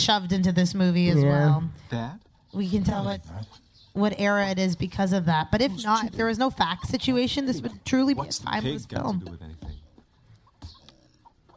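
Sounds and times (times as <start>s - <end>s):
speech: 0.0s - 9.8s
chickens clucking: 6.7s - 11.5s.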